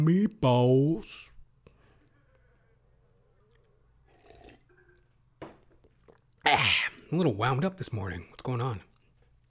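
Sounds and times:
speech: 0:00.0 - 0:01.3, 0:06.4 - 0:08.9
person sipping water: 0:03.2 - 0:05.2.

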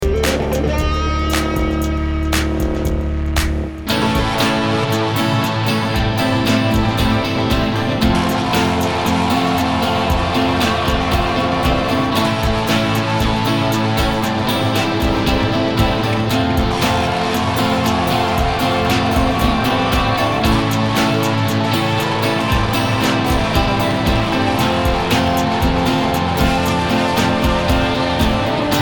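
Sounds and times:
90's synth funk music: 0:00.0 - 0:28.7.

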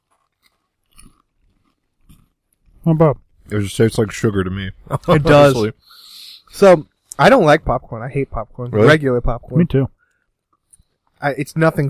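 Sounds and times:
chewing strawberries: 0:00.0 - 0:02.6
speech: 0:02.8 - 0:10.0, 0:11.2 - 0:11.8.

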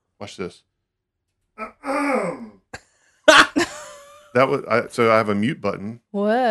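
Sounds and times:
speech: 0:00.2 - 0:00.7, 0:01.6 - 0:02.5, 0:04.4 - 0:06.4
person coughing: 0:01.6 - 0:02.7, 0:03.3 - 0:03.8
drawn-out voiced throat clearing: 0:01.6 - 0:02.8
laughter: 0:03.3 - 0:05.6.

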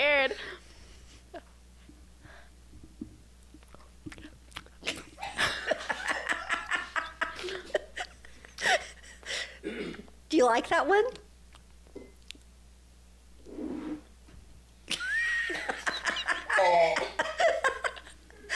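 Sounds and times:
person crunching while chewing a piece of chocolate: 0:03.6 - 0:04.9
laughter: 0:04.8 - 0:09.4, 0:14.9 - 0:18.5
speech: 0:10.4 - 0:11.2.

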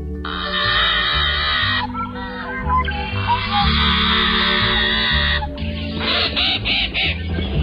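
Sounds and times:
steady music: 0:00.0 - 0:07.6
harsh grating calls of a bird that is the only member of its genus: 0:00.2 - 0:07.3.

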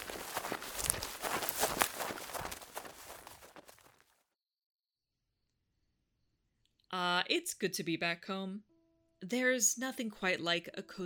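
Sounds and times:
hurried crunching footsteps through a forest: 0:00.0 - 0:04.2
speech: 0:07.3 - 0:11.0.

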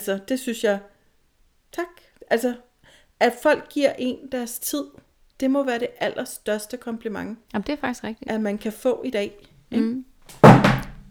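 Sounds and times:
speech: 0:00.0 - 0:00.9, 0:01.7 - 0:10.6
mobile phone thudding down onto a hard surface: 0:10.4 - 0:11.1.

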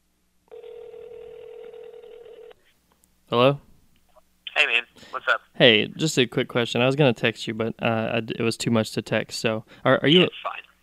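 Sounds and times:
phone ringback tone through the earpiece: 0:00.5 - 0:02.6
speech: 0:03.3 - 0:03.6, 0:05.2 - 0:10.6.

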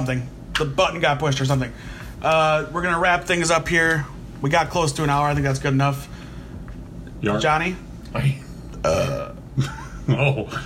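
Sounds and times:
speech: 0:00.0 - 0:06.1, 0:07.2 - 0:10.6
loud burp after drinking an energy drink: 0:08.8 - 0:09.4.

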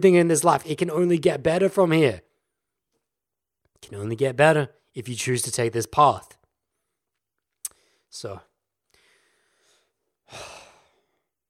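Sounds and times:
speech: 0:00.0 - 0:02.3, 0:03.8 - 0:06.4, 0:08.1 - 0:08.5, 0:10.3 - 0:10.5
deep breath: 0:08.9 - 0:11.4.

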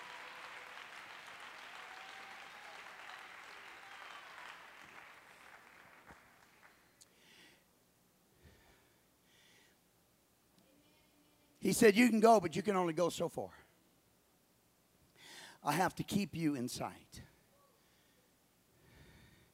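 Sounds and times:
audience clapping hands in applause: 0:00.0 - 0:06.9
speech: 0:11.7 - 0:13.6, 0:15.6 - 0:17.3.

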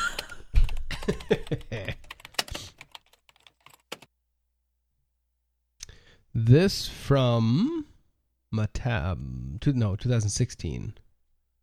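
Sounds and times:
typing on a computer keyboard: 0:00.0 - 0:04.1
speech: 0:01.1 - 0:02.0, 0:06.5 - 0:07.9, 0:08.5 - 0:11.0.

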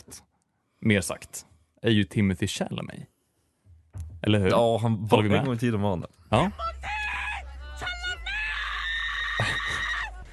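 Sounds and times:
speech: 0:00.1 - 0:03.1, 0:04.2 - 0:06.9
loud strained angry scream: 0:06.8 - 0:10.3.

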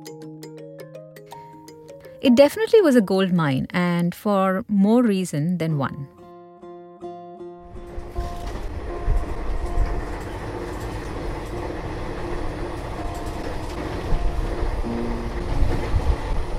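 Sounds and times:
speech: 0:02.2 - 0:06.2
night train clattering along rails with rattling carriages: 0:07.8 - 0:16.5.

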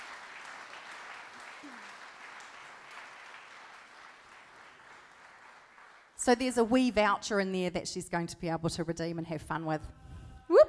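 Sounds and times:
crowd clapping: 0:00.0 - 0:06.2
speech: 0:06.2 - 0:10.0.

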